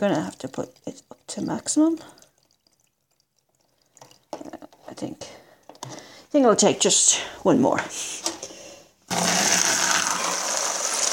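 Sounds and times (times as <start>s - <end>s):
speech: 0.0s - 2.2s, 4.4s - 8.4s, 9.1s - 9.6s
water poured from smaller containers into a steamer: 0.0s - 6.2s, 9.1s - 11.1s.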